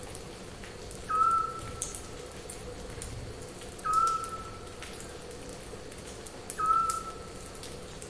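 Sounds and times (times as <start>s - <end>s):
scattered drip-like clicks: 0.1s - 8.0s
Eurasian scops owl whistled hoots: 1.1s - 1.6s, 3.8s - 4.5s, 6.6s - 7.2s.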